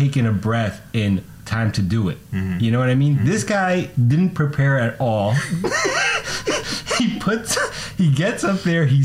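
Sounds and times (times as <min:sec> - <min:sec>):
speech: 0:00.0 - 0:09.0
laughter: 0:05.3 - 0:07.2
person acting out a fearful gasp: 0:06.1 - 0:08.0.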